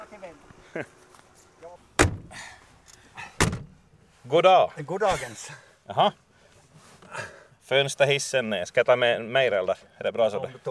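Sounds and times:
speech: 0.3 - 1.0, 4.3 - 6.2, 7.1 - 10.6
car door clunking open: 2.0 - 2.4, 3.4 - 3.8.

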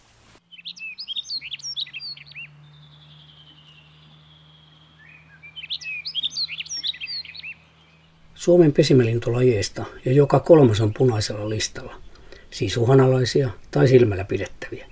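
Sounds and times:
rustic bunting singing: 0.4 - 14.9
speech: 8.4 - 14.9.

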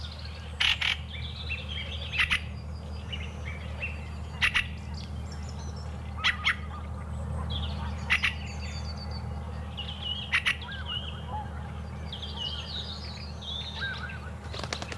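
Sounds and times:
steady low outdoor rumble: 0.0 - 14.9
fieldfare giving harsh chattering calls: 2.0 - 2.5, 3.7 - 5.0, 6.2 - 8.6, 10.2 - 11.7, 13.5 - 14.9.

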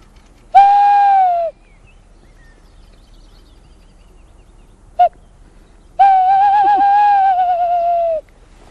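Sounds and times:
person imitating a male tawny owl's three-part courtship hoot: 0.6 - 1.5, 6.0 - 8.2.

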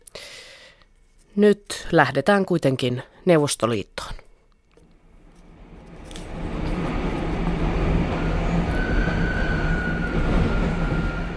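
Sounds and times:
speech: 1.4 - 4.2
train rumbling on rails: 5.2 - 11.3.

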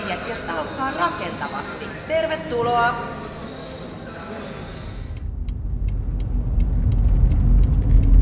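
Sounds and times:
speech: 0.3 - 3.2
car engine rumbling while parallel parking: 5.0 - 8.2
car turn signal ticking: 5.1 - 8.2.

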